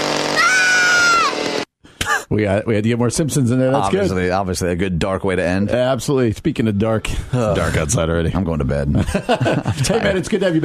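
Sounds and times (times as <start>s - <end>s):
new chainsaw revving: 0.0s - 1.7s
speech: 2.3s - 10.6s
laughter: 8.9s - 10.6s.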